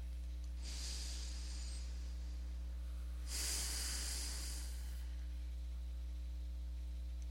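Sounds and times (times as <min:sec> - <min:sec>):
steady low hum: 0:00.0 - 0:07.2
deep slow breathing during a guided meditation: 0:00.6 - 0:05.5.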